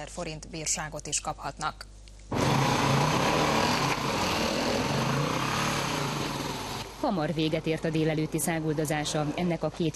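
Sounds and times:
speech: 0:00.0 - 0:03.0, 0:07.0 - 0:09.9
small off-road motorcycle engine running in a protected forest area: 0:02.3 - 0:06.9.

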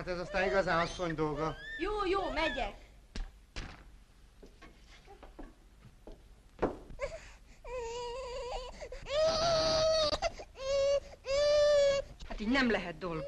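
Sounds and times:
infant crying and wailing: 0:00.0 - 0:02.8, 0:07.0 - 0:12.1
speech: 0:00.0 - 0:02.8, 0:12.4 - 0:13.2.

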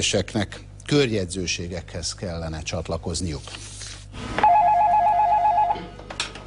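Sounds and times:
speech: 0:00.0 - 0:04.4
office telephone ringing with an electronic trill: 0:04.4 - 0:06.0.

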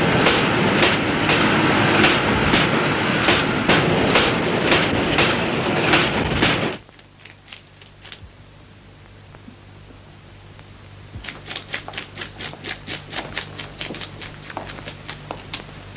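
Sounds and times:
train rolling past on rails: 0:00.0 - 0:06.8.

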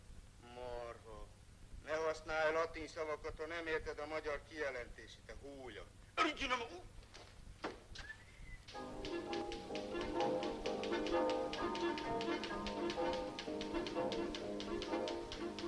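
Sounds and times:
speech: 0:02.2 - 0:07.0
bright musical backing: 0:08.7 - 0:15.6
typewriter keys tapping in a steady rapid rhythm: 0:08.7 - 0:15.6.

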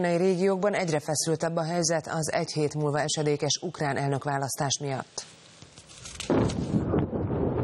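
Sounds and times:
speech: 0:00.0 - 0:05.4
loud boom rolling into a low rumble: 0:06.3 - 0:07.6.

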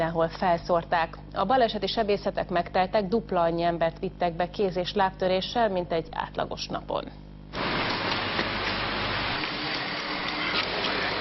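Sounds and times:
speech: 0:00.0 - 0:07.3
dense freezing rain falling in Budapest: 0:07.6 - 0:11.1.

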